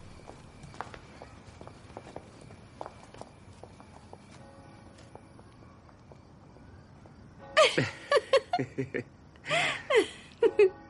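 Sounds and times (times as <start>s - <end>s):
footsteps of two women walking away: 0.0s - 7.3s
laughter: 7.6s - 10.7s.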